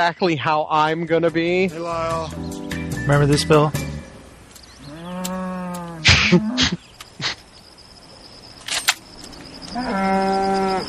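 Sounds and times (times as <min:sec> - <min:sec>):
speech: 0:00.0 - 0:03.9, 0:06.3 - 0:06.8
cow mooing in a film scene: 0:04.8 - 0:06.6, 0:09.7 - 0:10.8.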